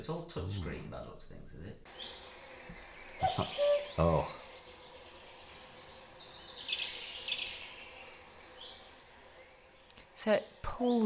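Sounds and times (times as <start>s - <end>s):
speech: 0.0s - 4.5s, 10.2s - 11.0s
cuckoo call alarm tone: 1.9s - 9.8s.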